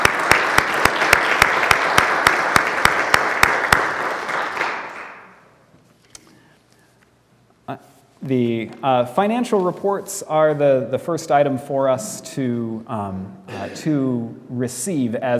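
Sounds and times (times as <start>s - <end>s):
room full of people applauding: 0.0s - 5.3s
speech: 7.7s - 15.3s.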